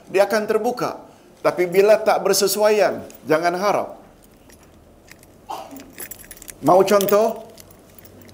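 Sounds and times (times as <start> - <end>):
quiet hum: 0.0 - 8.3
speech: 0.1 - 4.0, 6.6 - 7.4
keys jangling: 3.0 - 8.3.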